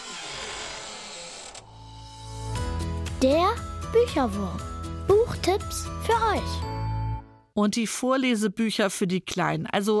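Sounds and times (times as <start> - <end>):
door creaking open with a grinding squeal: 0.0 - 2.2
speech: 3.2 - 6.8, 7.6 - 9.9.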